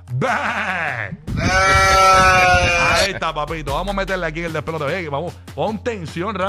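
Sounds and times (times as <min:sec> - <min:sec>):
speech: 0:00.1 - 0:02.2, 0:03.0 - 0:06.4
goat bleating: 0:01.4 - 0:03.1.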